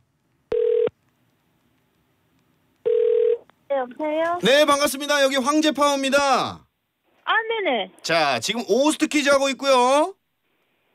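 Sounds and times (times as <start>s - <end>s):
telephone ringback tones of a call being connected: 0.5s - 0.9s, 2.9s - 3.4s
speech: 3.8s - 6.6s, 7.3s - 10.2s.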